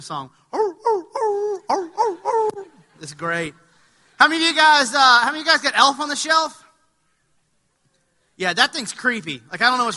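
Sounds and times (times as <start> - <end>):
speech: 0.0 - 0.6, 1.7 - 2.2, 3.0 - 3.6, 4.2 - 6.6, 8.4 - 9.9
pitched dog barks and yelps strung together like a melody: 0.5 - 2.8.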